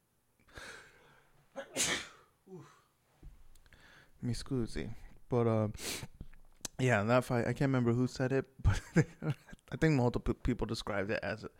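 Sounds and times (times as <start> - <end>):
sneeze: 1.6 - 2.3
speech: 4.2 - 6.1, 6.8 - 11.5.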